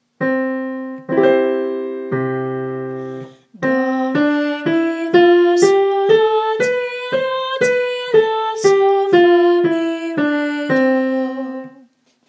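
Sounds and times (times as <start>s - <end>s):
major scale played: 0.2s - 11.8s.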